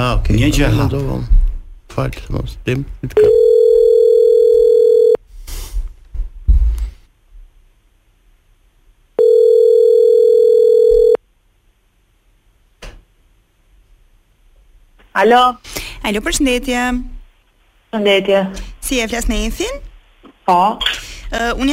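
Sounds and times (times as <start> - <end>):
speech: 0.0 - 3.5, 15.2 - 17.2, 17.9 - 19.9, 20.5 - 21.7
telephone tones while a number is being called: 3.2 - 5.2, 9.2 - 11.2.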